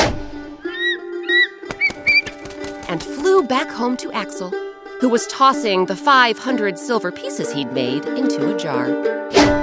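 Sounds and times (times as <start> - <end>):
eagle cries: 0.6 - 2.2
wings flapping: 0.8 - 3.5
speech: 2.9 - 9.6.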